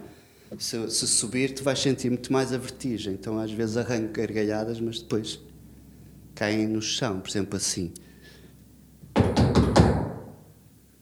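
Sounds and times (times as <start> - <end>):
speech: 0.5 - 5.5, 6.4 - 8.1
knocking on a door: 9.2 - 10.3.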